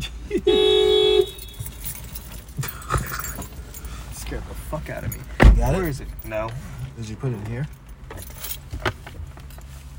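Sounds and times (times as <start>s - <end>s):
speech: 0.4s - 0.6s, 4.9s - 7.8s
car horn honk: 0.4s - 1.9s.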